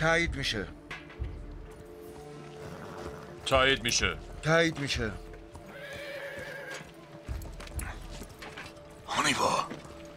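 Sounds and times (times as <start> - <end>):
speech: 0.0 - 0.8, 3.5 - 5.3, 9.3 - 9.7
horse hooves clip-clopping: 0.9 - 9.0
horse neighing: 2.6 - 3.4, 5.6 - 7.0.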